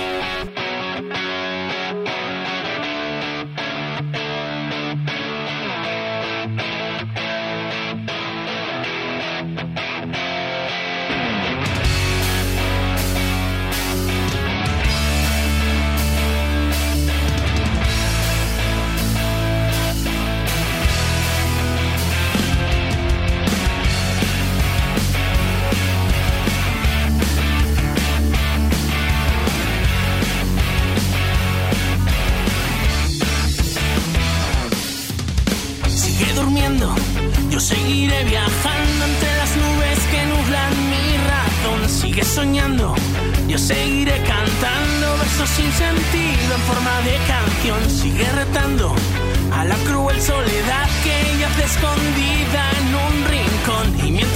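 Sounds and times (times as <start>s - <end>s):
distorted guitars: 0.0s - 54.3s
rock song with filtered intro and full band: 0.0s - 54.3s
heavy drums: 11.4s - 54.3s.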